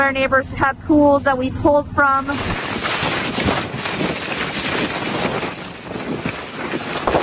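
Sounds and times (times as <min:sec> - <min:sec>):
speech: 0:00.0 - 0:02.8
strong Santa Ana wind gusts buffeting the microphone: 0:02.4 - 0:07.2.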